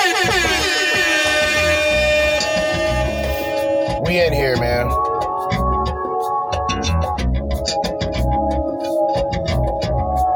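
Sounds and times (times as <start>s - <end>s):
air horn sound effect: 0.0s - 4.9s
pulsing low-end beat: 1.8s - 10.2s.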